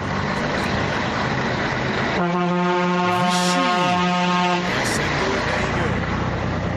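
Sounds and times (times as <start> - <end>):
steady road and engine rumble: 0.0 - 6.7
truck air horn with deep train-like chord: 2.2 - 4.8.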